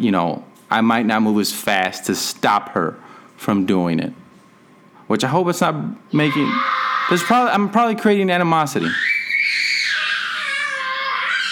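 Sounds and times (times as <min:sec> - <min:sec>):
speech: 0:00.0 - 0:04.2, 0:05.1 - 0:09.2
child screaming and wailing: 0:06.1 - 0:07.6, 0:08.8 - 0:11.5.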